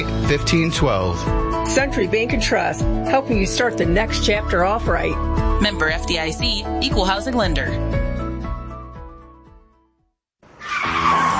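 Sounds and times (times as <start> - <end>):
speech: 0.0 - 8.0
music: 0.0 - 10.2
car brakes squealing: 10.6 - 11.3.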